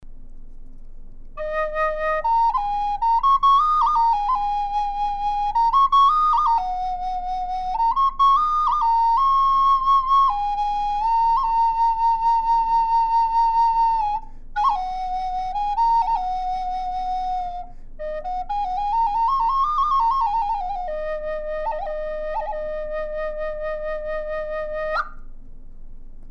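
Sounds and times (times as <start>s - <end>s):
high E flat cedar flutes: 1.4s - 25.3s.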